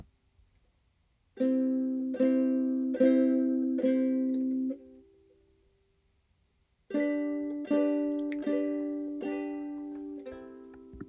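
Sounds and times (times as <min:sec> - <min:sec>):
ukulele chords: 0:01.4 - 0:05.6, 0:06.9 - 0:11.0.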